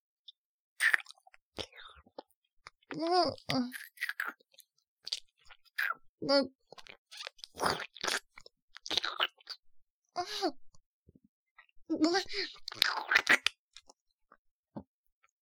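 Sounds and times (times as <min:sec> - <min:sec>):
crunchy food being bitten and chewed: 0:00.8 - 0:06.1, 0:06.7 - 0:09.6, 0:12.5 - 0:14.0
speech: 0:03.0 - 0:04.4, 0:06.2 - 0:06.6, 0:10.2 - 0:10.6, 0:11.9 - 0:13.4.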